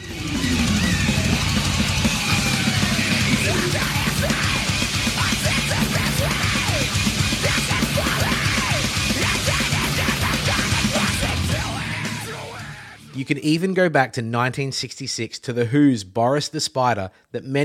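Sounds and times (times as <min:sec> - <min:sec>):
dense wall of distorted instruments: 0:00.0 - 0:13.4
harsh screamed metal vocals: 0:00.0 - 0:13.4
speech: 0:13.3 - 0:17.6.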